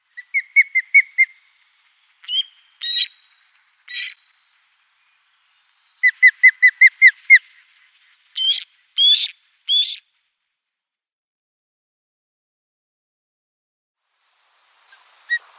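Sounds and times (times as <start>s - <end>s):
osprey calling with whistled and squealing notes: 0.0s - 4.6s, 6.0s - 10.1s, 14.9s - 15.5s.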